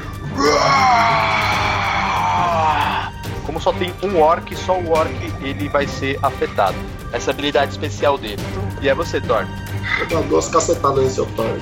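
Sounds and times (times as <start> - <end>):
person voicing a fake orc battle cry: 0.4 - 3.1
speech: 3.6 - 11.6.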